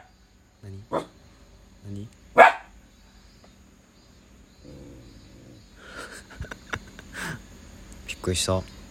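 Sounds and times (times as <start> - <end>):
speech: 0.9 - 1.1, 8.2 - 8.8
dog barking at a passerby: 0.9 - 1.2, 2.4 - 2.8
laughter: 5.8 - 7.4.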